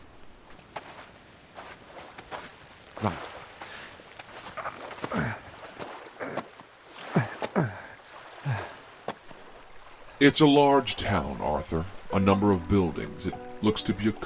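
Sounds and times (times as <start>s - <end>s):
faint outdoor background: 0.0s - 14.2s
heavy footsteps climbing onto a large boulder at the water's edge: 0.4s - 7.8s
speech: 3.0s - 3.3s, 10.2s - 14.2s.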